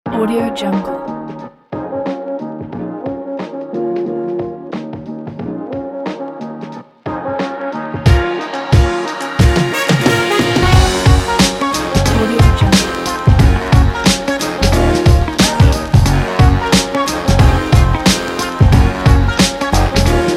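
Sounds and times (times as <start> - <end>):
jazz lofi hip hop music: 0.4 - 20.3.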